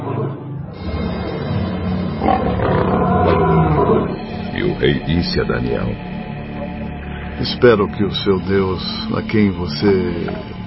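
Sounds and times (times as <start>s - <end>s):
lions roaring and growling: 0.0s - 5.1s
speech: 4.8s - 6.2s, 7.4s - 10.6s.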